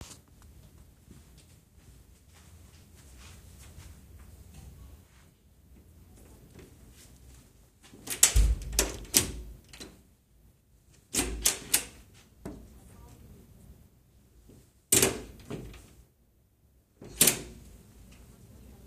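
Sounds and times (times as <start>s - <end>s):
doors: 5.8s - 10.1s, 11.0s - 13.2s, 14.5s - 16.0s, 17.0s - 18.4s.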